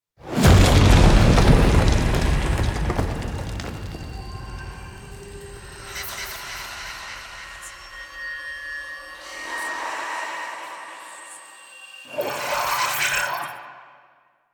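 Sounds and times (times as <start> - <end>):
cinematic meteor crash impact: 0.3 - 7.1.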